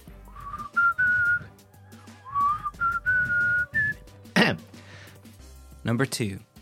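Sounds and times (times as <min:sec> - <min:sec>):
person whistling the melody of a rock ballad: 0:00.3 - 0:01.5, 0:02.2 - 0:04.1
speech: 0:05.8 - 0:06.5.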